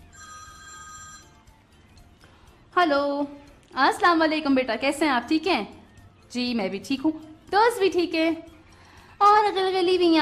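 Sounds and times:
mobile phone ringing with an incoming call: 0.0 - 2.1
speech: 2.8 - 8.5, 9.2 - 10.2.

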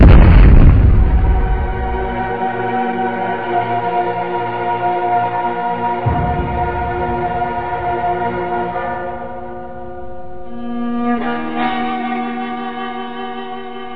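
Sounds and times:
bomb explosion: 0.0 - 2.5, 6.0 - 10.0
low tonal drone: 0.0 - 13.8.

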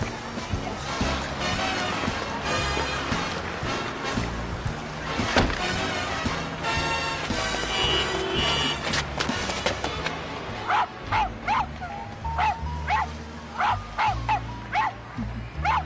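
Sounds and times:
street and traffic noise: 0.0 - 15.8
very small dog barking and yipping: 10.7 - 15.0, 15.6 - 15.8.

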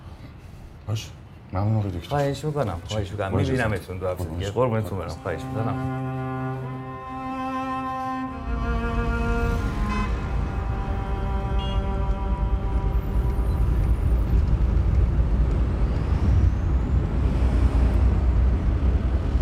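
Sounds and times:
speech: 0.9 - 6.2
car engine and road rumble while driving: 5.9 - 19.3.

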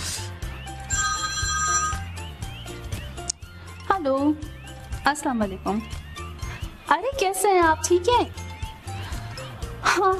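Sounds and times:
mobile phone bright repeating electronic ringtone: 0.8 - 2.4
speech: 4.0 - 6.0, 6.9 - 8.4, 10.0 - 10.1.

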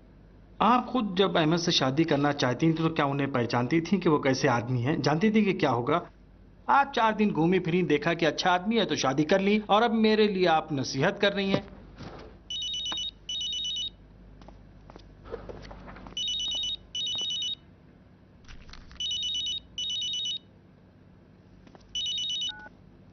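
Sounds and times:
faint hum: 0.0 - 23.1
speech: 0.6 - 11.7
telephone ringing in a double-ring pattern: 12.5 - 13.9, 16.2 - 17.6, 19.0 - 20.4, 21.9 - 22.7.

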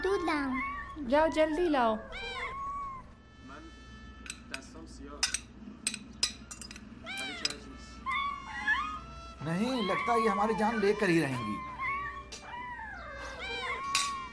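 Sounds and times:
speech: 0.0 - 2.3, 9.4 - 11.7
several cats meowing: 0.0 - 3.2, 6.9 - 14.3
dishes clinking: 4.2 - 7.8, 13.8 - 14.3.

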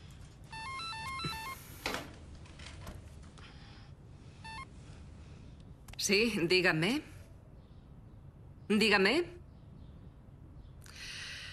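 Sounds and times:
steady noise: 0.0 - 11.5
electronic telephone ringtone melodic beeping tones: 0.5 - 1.8, 4.4 - 4.7
speech: 6.0 - 7.1, 8.7 - 9.4.

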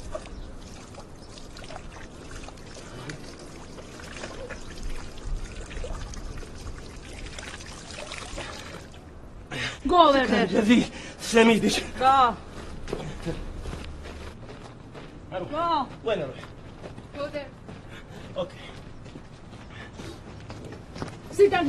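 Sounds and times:
thirsty animal lapping up water: 0.0 - 9.0
speech: 9.9 - 12.5, 13.2 - 13.4, 15.4 - 16.5, 18.4 - 18.6, 21.4 - 21.6.

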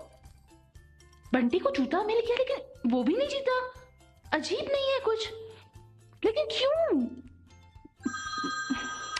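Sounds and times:
speech: 1.3 - 5.5, 6.2 - 7.3
mobile phone ringtone: 7.9 - 9.1.

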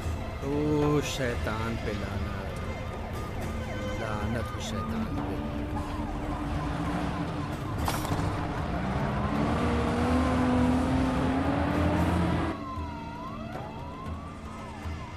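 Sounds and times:
road noise: 0.0 - 15.1
speech: 0.4 - 2.4, 4.2 - 8.4
car engine roaring as it accelerates hard: 5.8 - 13.7.

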